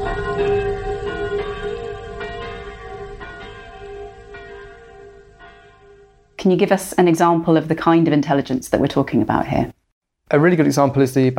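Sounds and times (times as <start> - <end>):
village church bells pealing: 0.0 - 8.4
speech: 6.4 - 11.3.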